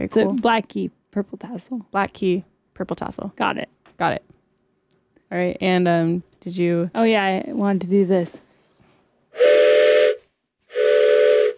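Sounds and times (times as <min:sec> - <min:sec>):
speech: 0:00.0 - 0:04.3, 0:05.3 - 0:08.4
steam train whistle blasts with breathy hiss: 0:09.3 - 0:11.5.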